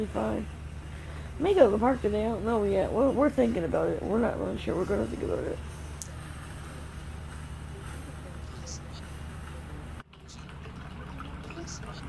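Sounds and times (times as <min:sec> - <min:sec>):
speech: 0:00.0 - 0:00.6, 0:01.4 - 0:05.7
low mechanical hum: 0:00.0 - 0:12.0
water trickling from a small home water fountain: 0:10.1 - 0:12.0.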